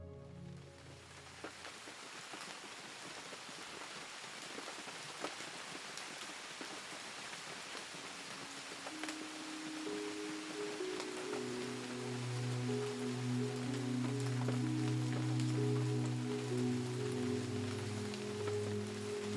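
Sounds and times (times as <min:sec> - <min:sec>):
rain falling outside a window: 0:00.5 - 0:19.3.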